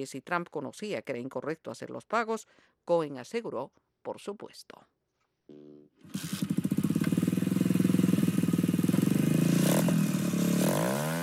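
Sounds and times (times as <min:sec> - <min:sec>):
speech: 0:00.0 - 0:06.6
loud motorcycle engines rumbling and revving in a caravan: 0:05.5 - 0:11.2.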